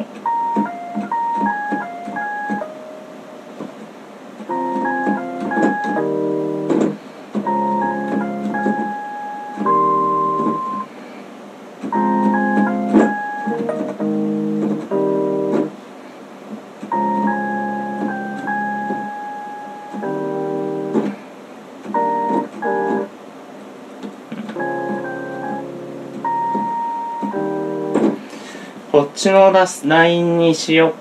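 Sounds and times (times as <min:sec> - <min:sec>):
electronic keyboard playing a bright chime-like melody: 0:00.0 - 0:03.6, 0:04.4 - 0:11.0, 0:11.9 - 0:15.8, 0:16.9 - 0:21.2, 0:21.9 - 0:23.2, 0:24.3 - 0:28.6
speech: 0:29.2 - 0:31.0.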